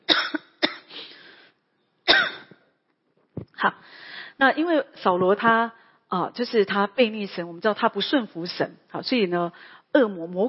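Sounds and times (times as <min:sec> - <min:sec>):
person coughing after choking: 0:00.1 - 0:01.0, 0:02.1 - 0:02.6
speech: 0:03.6 - 0:10.4.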